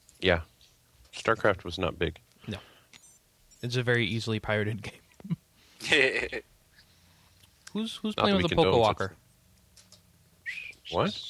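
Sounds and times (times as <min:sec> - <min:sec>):
speech: 0:00.2 - 0:00.5, 0:01.2 - 0:02.7, 0:03.6 - 0:06.5, 0:07.7 - 0:09.2, 0:10.9 - 0:11.2
person whistling: 0:10.4 - 0:11.0.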